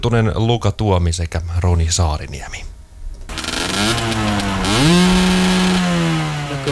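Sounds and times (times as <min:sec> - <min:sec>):
speech: 0:00.0 - 0:02.7
small two-stroke moped engine revving: 0:03.3 - 0:06.6.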